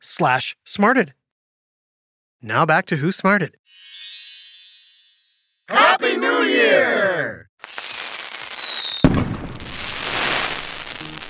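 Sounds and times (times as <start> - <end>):
speech: 0.2 - 1.2, 2.4 - 3.6, 5.7 - 7.8
firework whistling as it climbs: 7.6 - 11.2.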